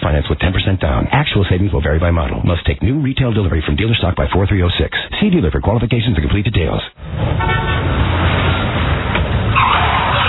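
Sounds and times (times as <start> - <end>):
road noise: 0.0 - 10.2
speech: 0.2 - 8.4
car roaring past: 7.0 - 10.2
car horn toot: 7.4 - 7.9.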